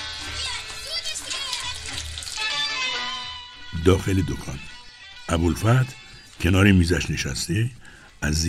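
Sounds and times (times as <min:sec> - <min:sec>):
water poured from a ewer spout onto hands: 0:00.1 - 0:03.3
speech: 0:03.8 - 0:04.7, 0:05.3 - 0:08.4.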